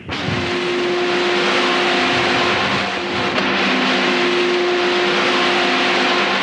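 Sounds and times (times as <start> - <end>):
high-powered crude oil pumps roaring at an Alaskan pipeline pump station: 0.0 - 6.4
steady humming tones of crude oil pumps: 0.0 - 6.4.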